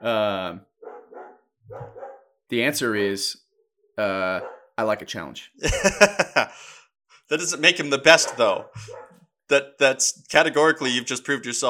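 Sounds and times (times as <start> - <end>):
speech: 0.0 - 0.7, 2.5 - 3.4, 4.0 - 11.6
dog barking: 0.8 - 2.4, 4.4 - 4.8, 8.1 - 9.2
laughter: 5.6 - 6.6.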